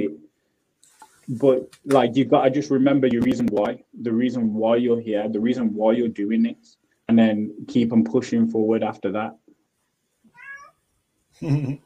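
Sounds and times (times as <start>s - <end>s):
speech: 1.3s - 9.4s, 11.4s - 11.8s
cat meowing: 10.3s - 10.8s.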